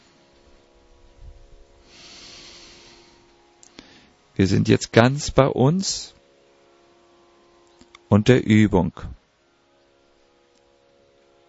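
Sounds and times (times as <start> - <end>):
breath in through the nose during a yoga exercise: 1.8 - 4.2
speech: 4.4 - 6.2, 8.1 - 9.2.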